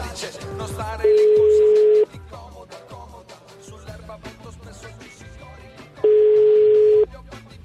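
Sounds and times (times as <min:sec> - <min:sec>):
mid-pitched telephone ringing tones while calling someone back: 0:01.1 - 0:02.1, 0:06.0 - 0:07.1.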